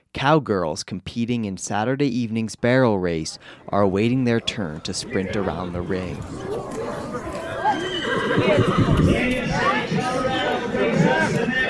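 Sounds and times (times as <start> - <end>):
speech: 0.2 - 6.8
murmur of people's voices in a crowded rodeo arena: 3.3 - 11.6
horse hooves clopping in a rodeo arena: 6.2 - 9.5
horses whinnying and neighing at a rodeo arena: 7.4 - 9.6.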